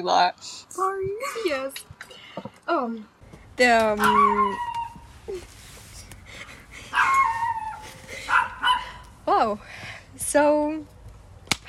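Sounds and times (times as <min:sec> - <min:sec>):
speech: 0:00.0 - 0:04.7, 0:05.3 - 0:05.5, 0:09.3 - 0:10.9
neighbor's dog barking with whiny yelping howls: 0:08.3 - 0:09.0.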